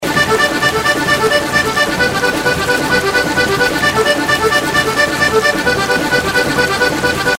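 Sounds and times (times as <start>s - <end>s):
anticipation music loop: 0.0s - 7.3s.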